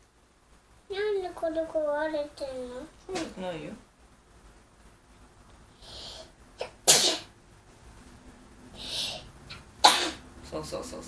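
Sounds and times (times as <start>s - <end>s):
speech: 1.2s - 3.9s
hissing breaths: 5.7s - 6.4s, 8.7s - 9.3s
loud sneeze: 6.6s - 7.3s, 9.8s - 10.2s.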